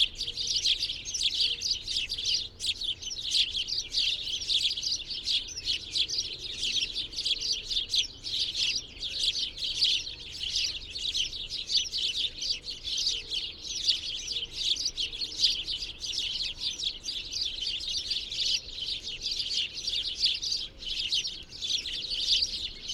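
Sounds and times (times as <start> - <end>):
birds twittering: 0.0 - 22.9.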